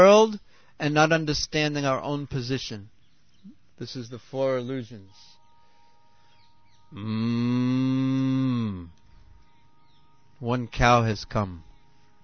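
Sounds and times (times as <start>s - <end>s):
speech: 0.0s - 5.4s, 6.9s - 9.0s, 10.4s - 11.7s
human voices: 6.9s - 9.0s
cow mooing: 6.9s - 9.1s.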